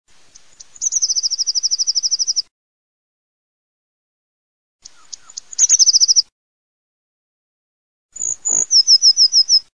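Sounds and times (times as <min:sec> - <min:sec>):
great tit singing: 0:00.3 - 0:02.5, 0:04.8 - 0:06.3, 0:08.2 - 0:09.7.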